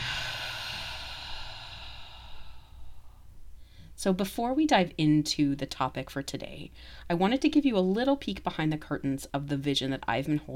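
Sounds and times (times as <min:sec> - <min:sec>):
slow exhale: 0:00.0 - 0:04.0
speech: 0:04.0 - 0:10.5.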